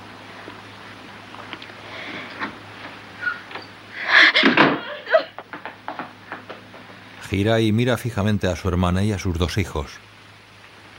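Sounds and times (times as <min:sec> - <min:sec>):
faint room hum: 0:00.0 - 0:10.9
door swinging and shutting with a dull thud: 0:04.4 - 0:04.9
speech: 0:07.3 - 0:10.1.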